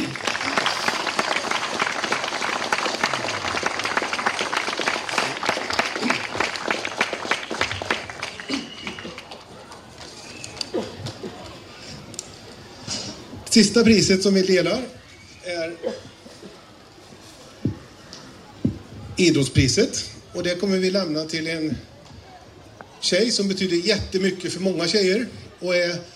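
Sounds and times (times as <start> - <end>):
audience applause at a sports club award ceremony: 0.0 - 11.5
speech: 13.6 - 15.0, 19.2 - 21.9, 23.0 - 26.1.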